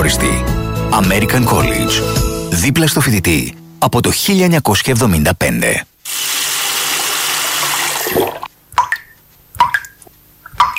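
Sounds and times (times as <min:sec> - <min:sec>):
speech: 0:00.0 - 0:06.2
water running from a tap: 0:06.1 - 0:08.5
water drips plinking into a basin: 0:08.2 - 0:10.7.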